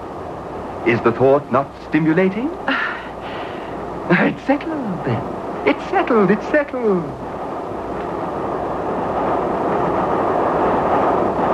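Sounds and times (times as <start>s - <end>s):
train rushing along the rails: 0.0s - 11.5s
speech: 0.8s - 2.8s, 4.1s - 7.3s.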